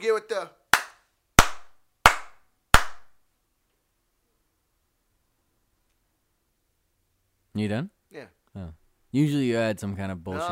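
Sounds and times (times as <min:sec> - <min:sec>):
speech: 0:00.0 - 0:00.6, 0:07.6 - 0:10.4
hand claps: 0:00.7 - 0:03.2.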